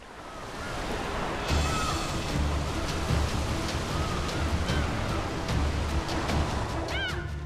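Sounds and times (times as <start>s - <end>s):
ocean waves and churning water around a British passenger ship in the Indian Ocean: 0.0s - 7.4s
faint high-pitched cries: 6.9s - 7.3s.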